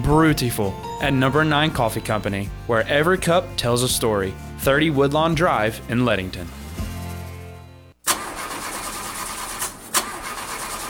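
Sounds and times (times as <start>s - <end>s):
speech: 0.1s - 6.6s
car engine cranking but failing to start: 8.0s - 10.8s.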